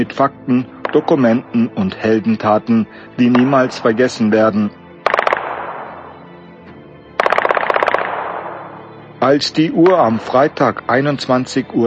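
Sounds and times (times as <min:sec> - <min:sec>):
speech: 0:00.0 - 0:04.8, 0:09.2 - 0:11.8
gunshots: 0:00.8 - 0:01.6, 0:03.2 - 0:04.2, 0:05.0 - 0:06.4, 0:07.2 - 0:09.0.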